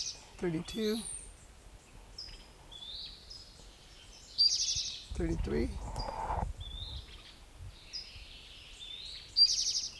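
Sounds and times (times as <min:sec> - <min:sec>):
speech: 0:00.0 - 0:01.2, 0:05.2 - 0:06.2
Western Tanager singing: 0:00.0 - 0:09.9.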